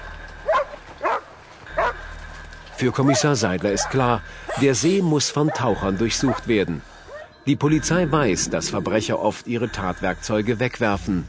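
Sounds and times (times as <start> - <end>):
police dog barking beside a lake: 0.5 - 1.2, 1.8 - 2.0, 3.0 - 4.7, 5.4 - 6.5
speech: 2.8 - 11.2.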